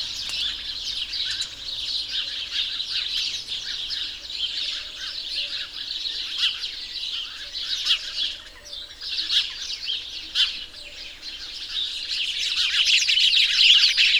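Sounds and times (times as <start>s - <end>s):
house sparrows calling together: 0.0s - 14.1s.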